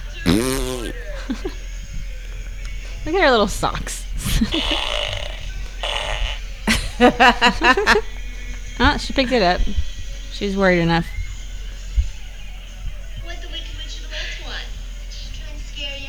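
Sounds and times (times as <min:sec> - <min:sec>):
short buzzy raspy flatulence: 0:00.2 - 0:01.1, 0:04.2 - 0:06.5
speech: 0:00.3 - 0:01.6, 0:03.0 - 0:05.2, 0:07.0 - 0:08.1, 0:08.8 - 0:11.2
people laughing: 0:00.3 - 0:01.9, 0:02.8 - 0:09.7.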